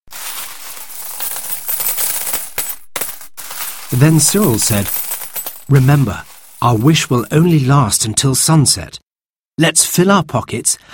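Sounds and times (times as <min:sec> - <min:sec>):
gold coins running through fingers and clinking: 0:00.1 - 0:07.6
speech: 0:03.9 - 0:05.0, 0:05.7 - 0:09.0, 0:09.6 - 0:10.9.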